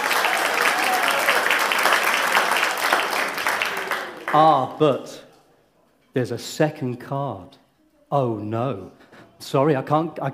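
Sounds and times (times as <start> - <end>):
audience applause: 0.0 - 5.1
speech: 4.3 - 5.2, 6.1 - 10.3.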